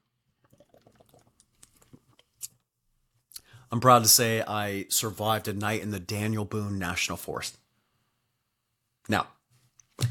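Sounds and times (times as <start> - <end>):
person slurping beer from a bottle: 0.4 - 2.6
speech: 3.7 - 7.6, 9.1 - 9.4.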